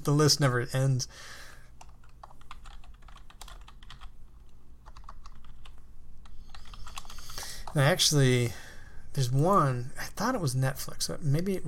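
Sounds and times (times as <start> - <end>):
speech: 0.0 - 1.5, 7.7 - 8.6, 9.2 - 11.6
computer keyboard keys clacking as someone types notes: 1.8 - 7.8.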